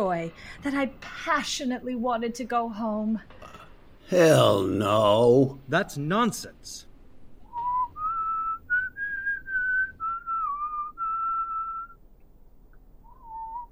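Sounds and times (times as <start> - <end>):
speech: 0.0 - 6.9
faint hiss: 0.0 - 13.7
person whistling a slow sustained melody: 7.5 - 12.0, 13.0 - 13.7.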